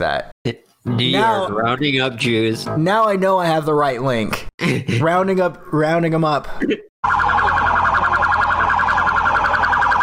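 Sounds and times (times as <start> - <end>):
speech: 0.0 - 8.0
siren wailing: 7.0 - 10.0.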